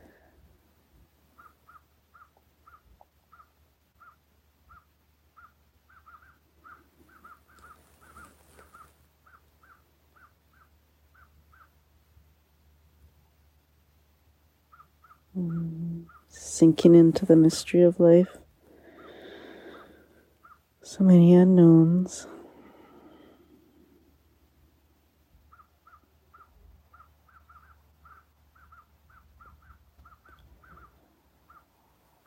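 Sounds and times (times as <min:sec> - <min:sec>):
low outdoor rumble: 0:00.0 - 0:32.2
crows cawing while harassing an eagle: 0:01.4 - 0:11.8, 0:14.7 - 0:15.3, 0:18.9 - 0:20.7, 0:25.5 - 0:32.2
speech: 0:15.4 - 0:18.4, 0:20.9 - 0:22.4.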